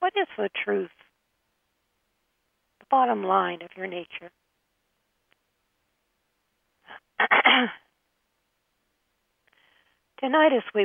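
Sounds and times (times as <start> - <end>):
speech: 0.2 - 1.0, 2.9 - 4.4, 6.9 - 7.8, 10.2 - 10.8
person clearing throat: 7.2 - 7.8.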